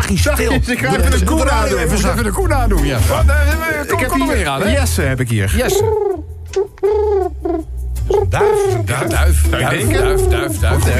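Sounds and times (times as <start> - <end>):
speech: 0.1 - 10.9
person imitating pigeon cooing: 5.8 - 10.9.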